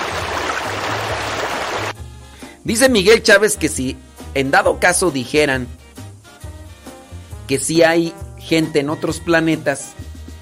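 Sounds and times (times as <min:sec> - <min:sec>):
river water rushing while someone bathes: 0:00.0 - 0:01.9
speech: 0:02.6 - 0:05.8, 0:07.5 - 0:10.0.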